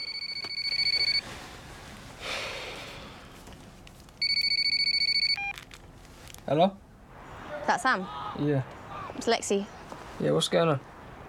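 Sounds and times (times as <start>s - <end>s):
phone ringing with rapid high electronic trilling: 0.0s - 1.2s, 4.2s - 5.6s
soft breathy noise: 1.2s - 3.5s
speech: 6.5s - 6.8s, 7.7s - 10.9s.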